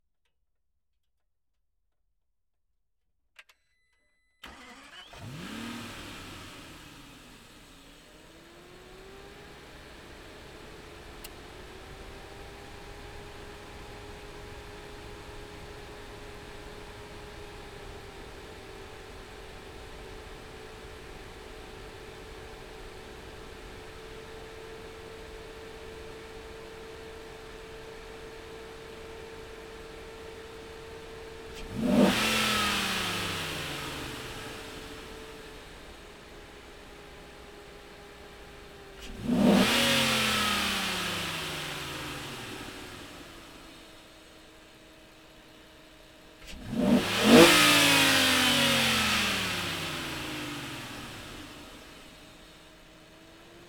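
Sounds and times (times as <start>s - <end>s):
Aston Martin DB9 engine starting: 4.4s - 53.6s
Aston Martin DB9 engine throttle blips in neutral: 31.5s - 36.0s, 39.0s - 44.0s, 46.4s - 52.2s.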